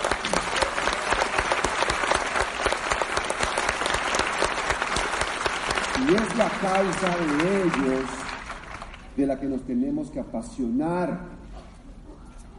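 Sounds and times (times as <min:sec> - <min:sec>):
large audience applause: 0:00.0 - 0:09.2
speech: 0:06.1 - 0:08.2, 0:09.2 - 0:11.4.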